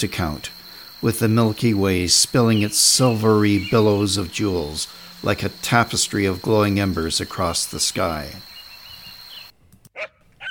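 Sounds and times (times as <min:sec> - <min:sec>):
speech: 0:00.0 - 0:08.5
broadband noise hiss: 0:00.0 - 0:09.6
dog yipping: 0:09.9 - 0:10.4.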